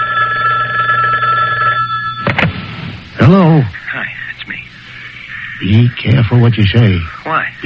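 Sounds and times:
telephone line noise: 0:00.0 - 0:02.4
telephone ringing on a wiretapped call from a remand centre phone: 0:00.0 - 0:02.4
speech: 0:03.3 - 0:04.3, 0:05.6 - 0:07.6.

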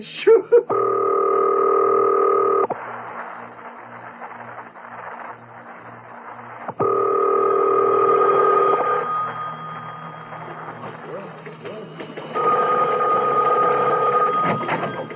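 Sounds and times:
loud steady buzzing telephone ring tones: 0:00.7 - 0:02.7, 0:06.8 - 0:10.6, 0:11.7 - 0:15.1
rapid rhythmic clicking and pulsing of telephone dialing: 0:02.5 - 0:15.1.

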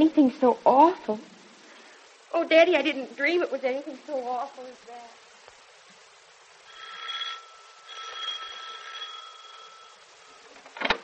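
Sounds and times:
speech: 0:00.0 - 0:01.4, 0:02.3 - 0:05.2
electric doorbell buzzing: 0:06.6 - 0:10.5.

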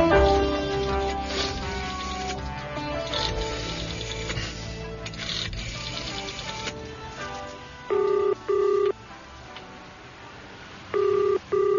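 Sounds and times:
busy clattering mechanical background: 0:00.1 - 0:07.7
electronic tone beeps of a telephone number being dialed: 0:07.9 - 0:08.9, 0:10.9 - 0:11.7.

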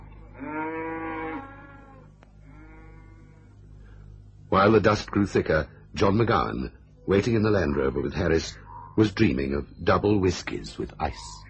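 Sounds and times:
faint low rumble of noise: 0:00.0 - 0:11.4
cow mooing: 0:00.3 - 0:03.6
speech: 0:04.5 - 0:11.4.

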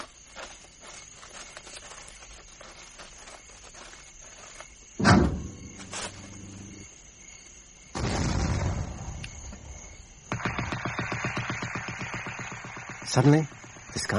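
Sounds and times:
booming explosion at night with lingering rumble: 0:08.0 - 0:09.2
sustained bursts of rapid machine-gun fire: 0:10.3 - 0:14.0
speech: 0:13.2 - 0:14.1.

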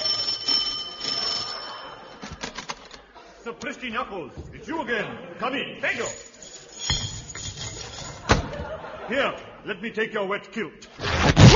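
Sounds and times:
bright bell ringing with shimmering metallic tone: 0:00.0 - 0:02.5, 0:05.9 - 0:08.3
laughter: 0:00.8 - 0:03.6, 0:08.1 - 0:09.8
speech: 0:03.4 - 0:06.3, 0:09.1 - 0:11.0.

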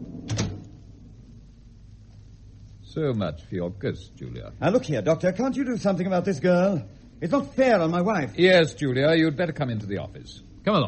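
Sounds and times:
low steady hum: 0:00.0 - 0:10.8
door being shut: 0:00.2 - 0:00.7
speech: 0:02.9 - 0:10.8.

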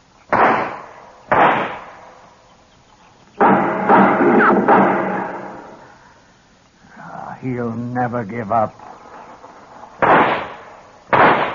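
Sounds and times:
gunshots: 0:00.3 - 0:02.0, 0:03.4 - 0:05.7, 0:10.0 - 0:11.5
speech: 0:07.4 - 0:08.9.

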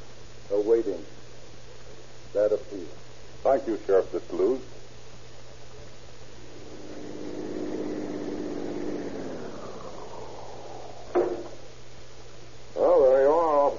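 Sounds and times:
speech: 0:00.5 - 0:01.2, 0:02.3 - 0:04.8
police car engine droning while driving: 0:06.1 - 0:12.5
wavering warbling tone: 0:06.3 - 0:11.9.

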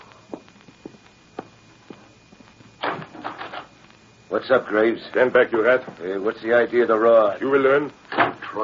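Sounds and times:
soft footsteps: 0:00.0 - 0:03.2
speech: 0:04.3 - 0:08.6.

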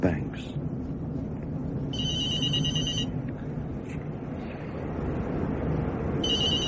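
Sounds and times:
low engine rumble: 0:00.0 - 0:06.6
cell phone ringing with a high warbling electronic tone: 0:02.0 - 0:03.1, 0:06.2 - 0:06.6.

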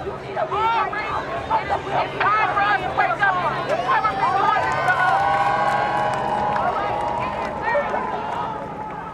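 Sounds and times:
large crowd of protest marchers shouting and calling on a highway: 0:00.0 - 0:09.1.

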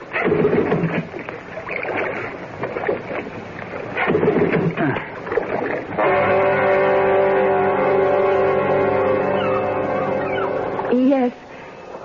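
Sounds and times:
water sloshing and splashing around a small drifting motorboat: 0:00.0 - 0:06.1
steady even droning hum: 0:00.0 - 0:12.0.

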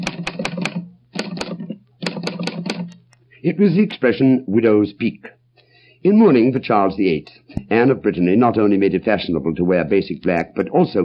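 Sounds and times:
Underwood typewriter keys clacking: 0:00.0 - 0:03.2
speech: 0:03.4 - 0:05.4, 0:06.0 - 0:11.0.

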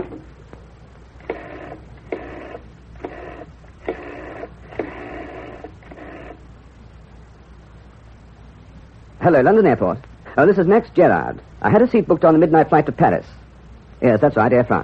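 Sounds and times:
telephone being dialed: 0:00.0 - 0:00.3, 0:01.2 - 0:06.4
speech: 0:09.2 - 0:13.4, 0:14.0 - 0:14.8.

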